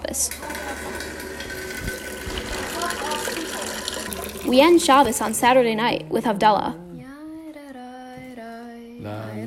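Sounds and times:
water running from a tap into a pitcher: 0.3s - 5.6s
speech: 4.5s - 6.8s.

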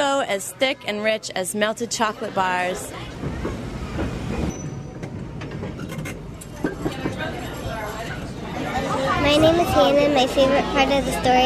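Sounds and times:
speech: 0.3s - 3.6s, 9.2s - 11.4s
passenger train wheels clacking and rattling: 3.1s - 7.4s
passenger train rumbling on tracks: 3.2s - 5.8s.

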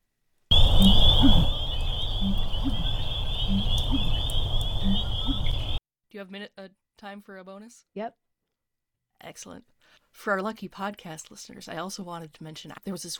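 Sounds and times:
bittern giving low hollow gulping calls: 0.5s - 5.8s
constant thin high drone: 0.5s - 5.8s
speech: 0.8s - 1.6s, 6.2s - 8.2s, 9.2s - 13.1s.

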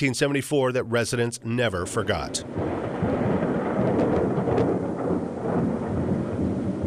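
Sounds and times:
speech: 0.0s - 2.8s
deep rumble of thunder: 0.0s - 6.8s
dense rain of a thunderstorm in Xenia: 1.6s - 6.8s.

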